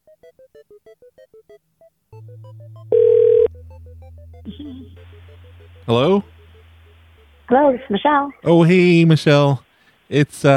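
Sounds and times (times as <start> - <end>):
steady low phone line tone on an outgoing call: 2.2 - 6.7
speech: 2.3 - 6.3, 7.5 - 10.5.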